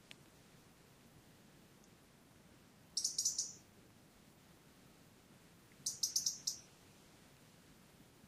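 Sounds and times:
faint background hiss: 0.0s - 8.2s
European robin Erithacus rubecula ticking calls: 3.0s - 3.6s, 5.8s - 6.7s.

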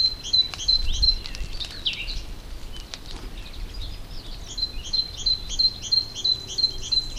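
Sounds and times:
great tit Parus major calls: 0.0s - 7.1s.

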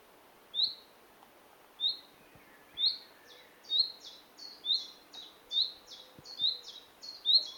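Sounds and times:
low background hiss: 0.0s - 7.5s
common nightingale Luscinia megarhynchos giving rising whistled calls: 0.6s - 0.8s, 1.8s - 7.5s.

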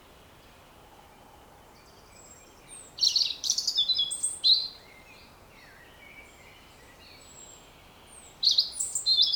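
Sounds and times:
faint background hiss: 0.0s - 9.3s
European robin Erithacus rubecula singing: 1.8s - 9.3s.

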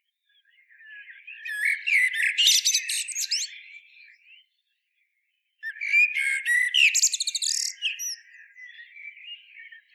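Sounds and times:
common blackbird Turdus merula song: 0.0s - 9.9s.

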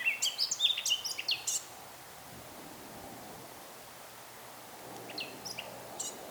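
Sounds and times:
Eurasian blackcap Sylvia atricapilla song: 0.0s - 1.7s, 5.1s - 6.2s.

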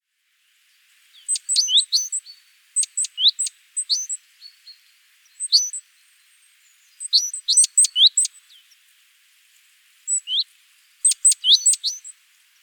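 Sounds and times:
great tit Parus major thin high chirping calls: 1.2s - 6.0s, 6.7s - 8.8s, 10.1s - 12.2s.

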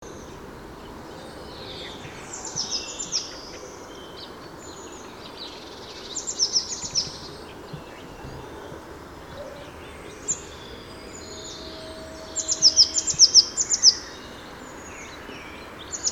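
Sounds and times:
soft steady outdoor hiss: 0.0s - 16.0s
Eurasian blue tit calls: 6.1s - 14.5s.

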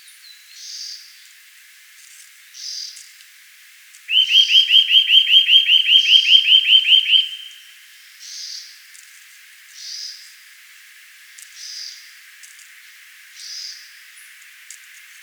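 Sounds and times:
Eurasian nuthatch Sitta europaea giving upswept piping notes: 4.1s - 7.6s.

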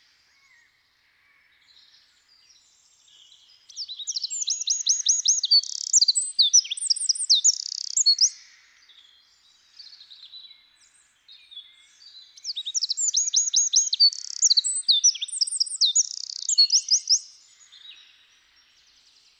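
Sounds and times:
Eurasian wren Troglodytes troglodytes singing: 3.8s - 8.4s, 12.4s - 17.3s.

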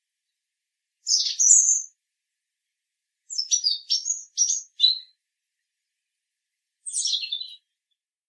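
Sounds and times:
European robin Erithacus rubecula singing: 1.0s - 2.0s, 3.3s - 5.2s, 6.8s - 7.8s.

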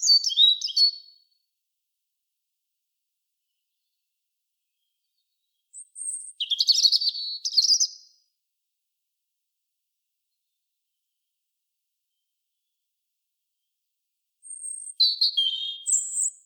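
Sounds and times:
European robin Erithacus rubecula singing: 0.0s - 1.2s, 4.8s - 8.2s, 14.4s - 16.4s.

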